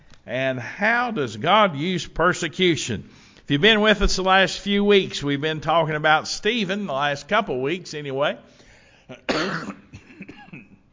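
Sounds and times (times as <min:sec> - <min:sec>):
speech: 0:00.2 - 0:09.8
preacher coughing during a sermon: 0:09.1 - 0:10.9.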